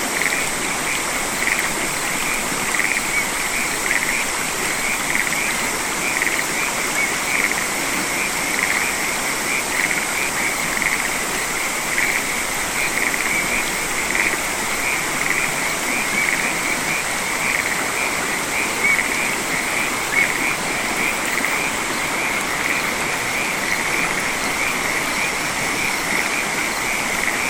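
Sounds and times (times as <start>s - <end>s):
frogs in rice fields on a warm summer evening: 0.0s - 27.4s
insects in rice fields on a warm summer evening: 0.0s - 27.4s.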